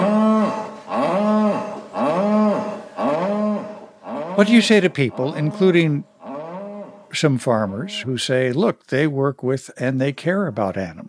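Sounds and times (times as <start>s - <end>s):
cow bellowing for her calf: 0.0s - 8.2s
speech: 4.4s - 6.1s, 7.1s - 11.0s.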